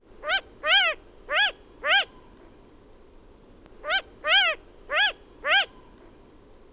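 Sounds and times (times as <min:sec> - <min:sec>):
long-eared owl hooting: 0:00.2 - 0:02.4, 0:03.8 - 0:06.0.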